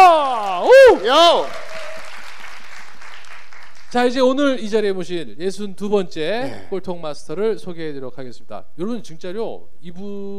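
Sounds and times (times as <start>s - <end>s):
audience applause: 0.1s - 4.0s
speech: 0.9s - 1.6s, 3.9s - 10.3s.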